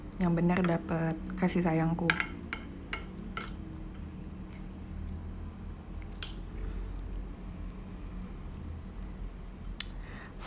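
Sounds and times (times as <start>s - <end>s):
speech: 0.2s - 2.4s
chopsticks clinking: 2.1s - 4.0s
soft wet rhythmic squishing: 3.3s - 9.1s.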